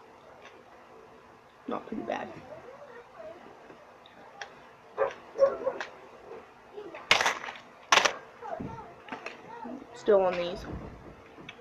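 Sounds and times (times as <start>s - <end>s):
speech: 1.7s - 2.7s, 10.1s - 10.9s
dogs barking: 5.0s - 6.5s.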